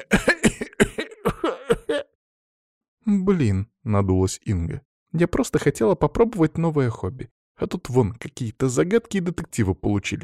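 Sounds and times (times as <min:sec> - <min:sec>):
speech: 0:00.0 - 0:00.4, 0:03.2 - 0:10.2
voice imitating a foolish man's insistent throat clearing: 0:00.0 - 0:02.2.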